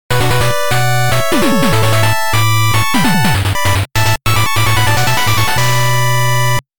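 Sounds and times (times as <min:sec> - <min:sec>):
8-bit game start jingle: 0:00.1 - 0:06.6.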